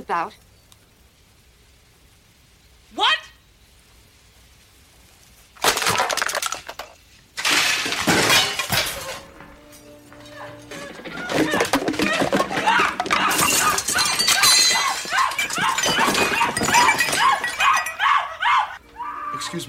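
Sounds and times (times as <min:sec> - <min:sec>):
speech: 0:00.0 - 0:00.5
objects including a pot roast swept off kitchen counters crashing and shattering: 0:05.6 - 0:09.6, 0:10.2 - 0:18.3
dog barking and whimpering: 0:10.3 - 0:19.4.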